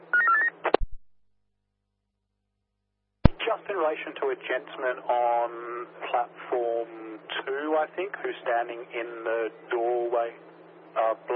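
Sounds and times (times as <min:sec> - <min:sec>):
telephone dialing electronic tone beeps: 0:00.1 - 0:00.6
speech: 0:03.7 - 0:11.3.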